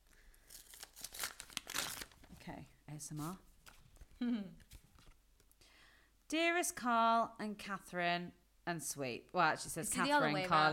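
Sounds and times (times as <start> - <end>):
greeting card envelope paper tearing and crinkling: 0.4 - 2.4
speech: 2.5 - 3.5, 4.2 - 4.7, 6.3 - 10.7.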